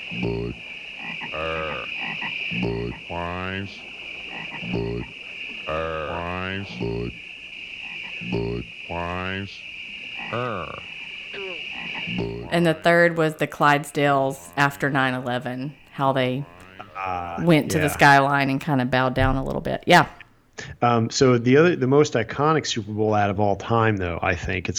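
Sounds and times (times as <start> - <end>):
laughter: 0.0 - 7.2, 10.2 - 20.0
high insect-like drone: 0.0 - 15.4
frogs croaking in a beer commercial: 0.0 - 20.6
speech: 2.5 - 5.1, 6.5 - 7.4, 8.2 - 9.7, 10.3 - 10.9, 12.0 - 24.7.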